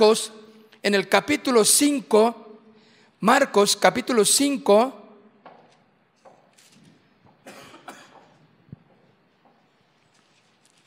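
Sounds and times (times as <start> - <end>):
speech: 0.0 - 2.4, 3.2 - 5.0
emotional speaker coughing harshly: 7.4 - 8.4.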